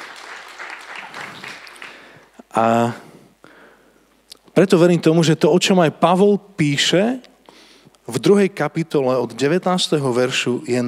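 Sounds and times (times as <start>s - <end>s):
audience applause for a group of boys: 0.0s - 2.3s
speech: 2.6s - 3.0s, 4.6s - 7.3s, 8.1s - 10.8s.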